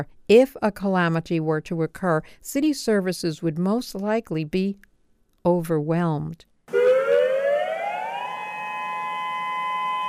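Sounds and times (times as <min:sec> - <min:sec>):
speech: 0:00.0 - 0:06.8
tsunami warning siren wailing: 0:06.7 - 0:10.0.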